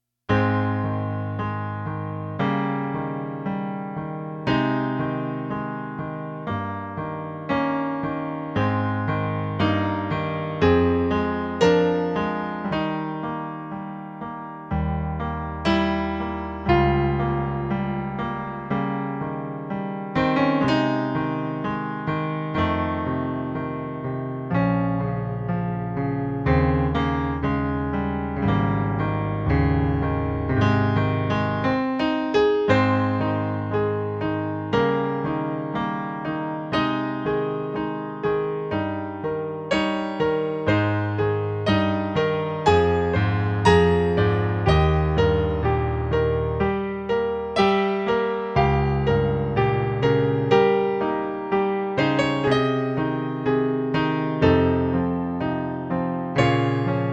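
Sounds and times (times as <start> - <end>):
classical piano piece: 0.0 - 57.1.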